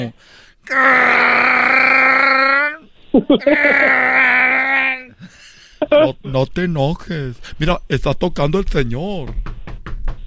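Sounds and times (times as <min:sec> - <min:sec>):
speech: 0:00.0 - 0:02.0, 0:03.2 - 0:04.3, 0:05.9 - 0:09.5
person imitating a guttural growling creature roar: 0:00.7 - 0:02.8, 0:03.4 - 0:05.2.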